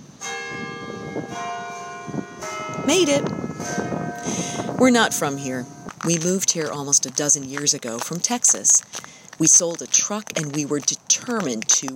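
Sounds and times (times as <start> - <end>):
cathedral bell ringing in a city street with brick paving: 0.0 - 6.4
speech: 2.9 - 3.8, 4.8 - 11.9.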